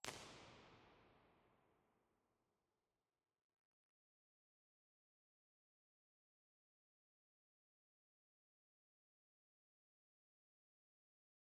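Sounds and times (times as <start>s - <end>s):
nuclear reactor hall ambience: 0.0s - 1.4s.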